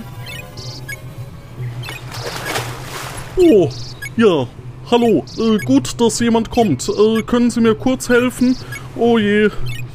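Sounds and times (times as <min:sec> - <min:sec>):
high-pitched squeaks and chirps from behind a lighthouse: 0:00.0 - 0:01.0, 0:01.7 - 0:02.7, 0:03.7 - 0:04.2, 0:05.0 - 0:05.8, 0:08.4 - 0:08.9, 0:09.6 - 0:09.9
steady low hum: 0:00.0 - 0:09.9
speech: 0:03.4 - 0:09.9.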